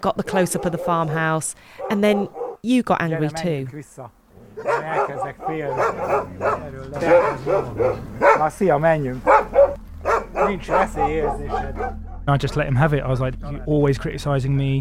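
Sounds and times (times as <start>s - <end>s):
farm dogs barking: 0.0s - 2.6s, 4.4s - 12.7s
speech: 0.0s - 9.3s, 10.4s - 14.8s.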